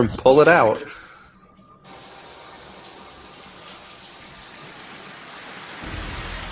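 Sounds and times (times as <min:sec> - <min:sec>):
speech: 0:00.0 - 0:01.0
shower water running: 0:01.8 - 0:06.5.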